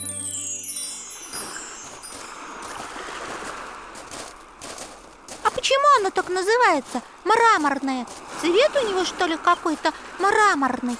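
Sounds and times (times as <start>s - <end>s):
sea water splashing: 1.2s - 4.4s
speech: 5.7s - 10.9s.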